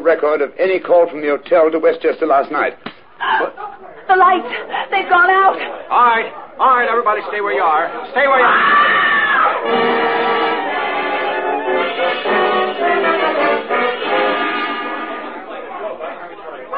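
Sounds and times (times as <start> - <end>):
speech: 0.0 - 10.0
many voices shouting and clamoring: 8.2 - 16.2
high scream: 8.4 - 12.8.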